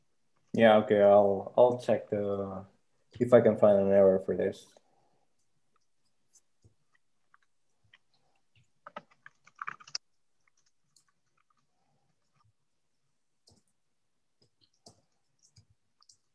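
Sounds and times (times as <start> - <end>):
speech: 0.6 - 4.8
computer keyboard typing: 7.3 - 12.5, 13.4 - 13.8, 14.4 - 16.3.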